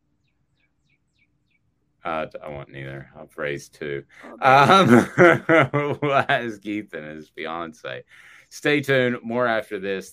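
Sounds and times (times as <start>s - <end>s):
bird chirping: 0.0s - 3.0s
speech: 2.0s - 10.1s
laughter: 4.2s - 8.0s.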